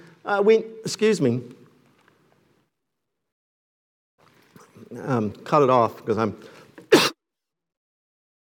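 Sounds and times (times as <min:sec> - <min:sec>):
speech: 0:00.2 - 0:01.6, 0:04.9 - 0:06.6
person coughing: 0:06.9 - 0:07.2.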